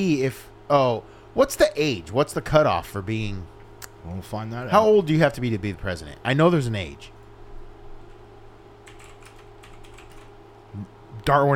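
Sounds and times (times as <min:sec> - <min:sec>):
speech: 0:00.0 - 0:07.2, 0:10.8 - 0:11.5
steady low electrical hum: 0:00.0 - 0:11.5
typing on a computer keyboard: 0:08.8 - 0:10.3.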